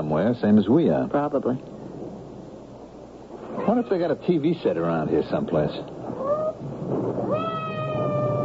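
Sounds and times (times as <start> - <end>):
speech: 0.0 - 1.8, 3.5 - 6.2
steady rumbling backdrop: 0.0 - 8.4
hungry cat meowing: 6.2 - 6.6, 7.2 - 8.4.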